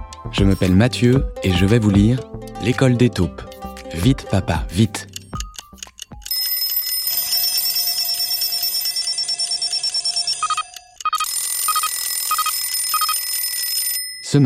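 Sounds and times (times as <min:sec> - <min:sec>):
speech: 0:00.3 - 0:05.1
several alarm clocks ringing with electronic tones and rattling bells: 0:05.2 - 0:14.4
rapid rhythmic beeping pulses: 0:08.5 - 0:13.2.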